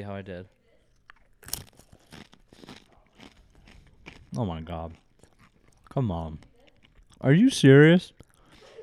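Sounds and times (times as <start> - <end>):
speech: 0.0 - 0.6, 4.3 - 5.0, 6.0 - 6.5, 7.2 - 8.2
crunching a chip with dip: 0.9 - 7.4.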